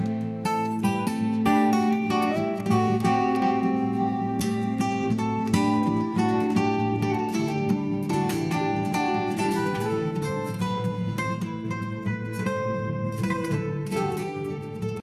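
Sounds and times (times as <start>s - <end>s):
smooth guitar ballad: 0.0s - 15.0s.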